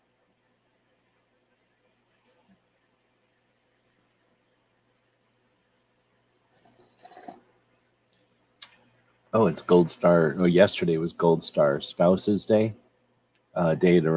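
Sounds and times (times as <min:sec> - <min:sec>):
slurp of hot coffee: 0:06.6 - 0:07.5
speech: 0:09.4 - 0:12.8, 0:13.6 - 0:14.1.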